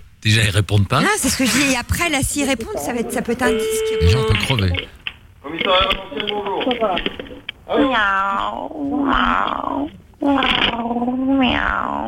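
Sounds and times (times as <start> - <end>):
speech: 0.2 - 12.0
person mimicking drawn-out wavering cat meows: 3.0 - 4.9, 7.7 - 12.0.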